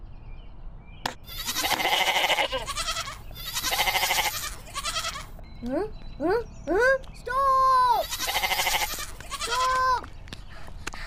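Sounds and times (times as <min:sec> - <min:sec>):
goat bleating: 0:01.2 - 0:05.3, 0:08.0 - 0:09.8
speech: 0:05.6 - 0:07.1.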